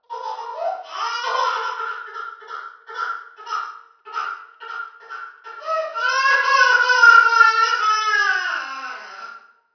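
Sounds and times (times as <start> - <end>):
baby crying: 0.1 - 9.5.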